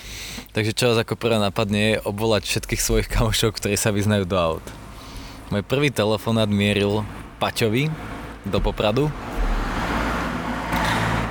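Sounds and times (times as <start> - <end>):
speech: 0.6 - 4.8, 5.5 - 9.2
car passing by on a road: 7.9 - 11.3.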